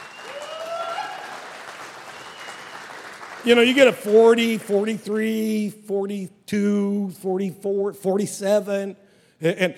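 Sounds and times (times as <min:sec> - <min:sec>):
crowd clapping: 0:00.0 - 0:04.9
speech: 0:03.4 - 0:09.7.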